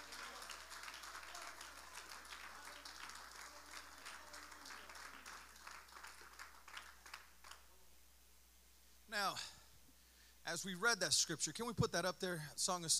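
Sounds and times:
audience applause in a large room: 0:00.0 - 0:07.7
speech: 0:09.2 - 0:09.6, 0:10.4 - 0:12.9.

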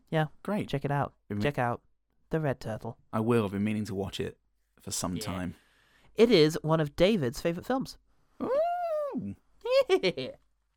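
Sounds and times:
speech: 0:00.1 - 0:05.6, 0:06.2 - 0:08.6, 0:09.2 - 0:10.4
person imitating a dog howling: 0:08.4 - 0:09.4.

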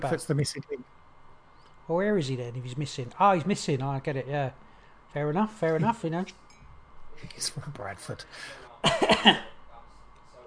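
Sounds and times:
speech: 0:00.0 - 0:01.0, 0:01.9 - 0:06.4, 0:07.2 - 0:09.5
short dry rasping cough: 0:08.8 - 0:09.6.

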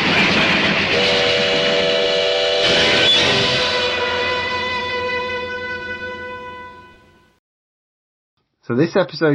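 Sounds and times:
rumbling rail noise: 0:00.0 - 0:07.3
train whistle screaming: 0:00.9 - 0:07.4
speech: 0:08.7 - 0:09.3.

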